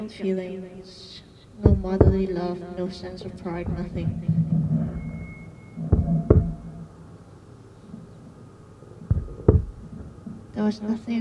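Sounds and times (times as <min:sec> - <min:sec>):
speech: 0:00.0 - 0:04.5, 0:10.6 - 0:11.1
low murky hum: 0:00.0 - 0:11.1
baby's first heartbeat double thumps: 0:01.6 - 0:02.4, 0:03.5 - 0:05.2, 0:05.8 - 0:06.8, 0:09.0 - 0:10.0.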